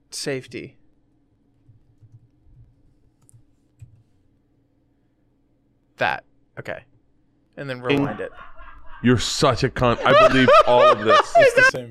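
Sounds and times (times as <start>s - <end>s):
speech: 0.1s - 0.8s, 6.0s - 6.9s, 7.6s - 11.8s
typing on a computer keyboard: 1.7s - 4.1s
laughter: 7.9s - 11.8s.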